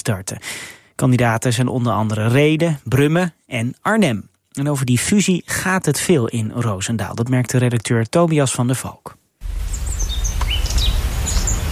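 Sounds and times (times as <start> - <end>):
speech: 0.0 - 9.6
small birds chirping in a garden near a castle: 9.6 - 11.7.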